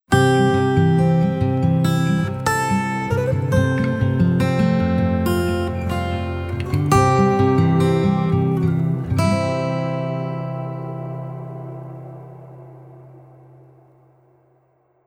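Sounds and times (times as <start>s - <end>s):
guitar jingle: 0.1s - 14.5s.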